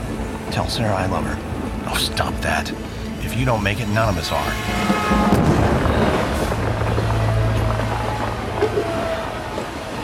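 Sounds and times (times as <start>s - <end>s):
train lurching and crashing through a tunnel: 0.0s - 10.0s
speech: 0.5s - 5.3s.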